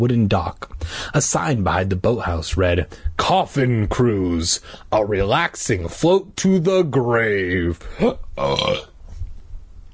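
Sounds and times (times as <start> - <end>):
speech: 0.0 - 8.9
woman letting out a loud deep burp: 8.4 - 8.9.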